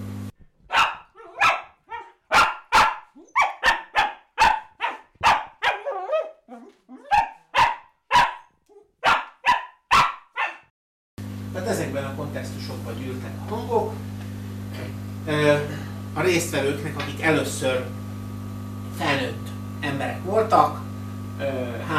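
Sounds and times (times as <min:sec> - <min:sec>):
dog barking excitedly before a walk: 0:00.7 - 0:10.7
speech: 0:11.6 - 0:14.1, 0:14.8 - 0:18.0, 0:19.0 - 0:20.8, 0:21.4 - 0:21.9.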